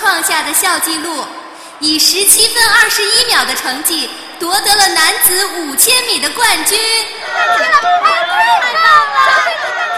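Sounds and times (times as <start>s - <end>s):
speech: 0.4s - 9.7s
crowd of girls cheering and squealing: 7.0s - 9.9s.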